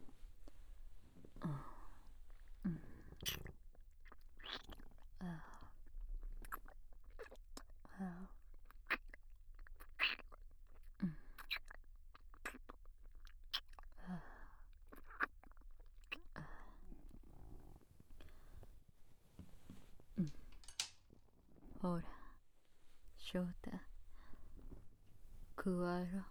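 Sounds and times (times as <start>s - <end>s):
chewing and munching on soft sweet food: 0.4s - 18.8s
speech: 21.8s - 22.2s, 23.3s - 23.5s, 25.6s - 26.3s.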